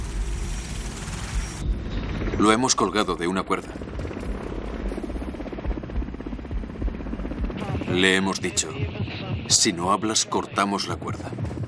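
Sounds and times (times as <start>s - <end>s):
helicopter flying: 0.0s - 11.6s
speech: 2.4s - 3.9s, 7.9s - 11.6s.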